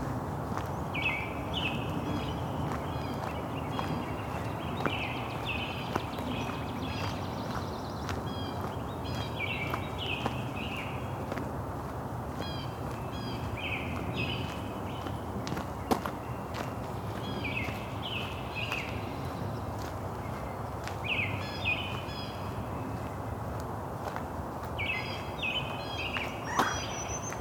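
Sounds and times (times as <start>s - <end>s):
dawn chorus of birds: 0.4s - 27.3s.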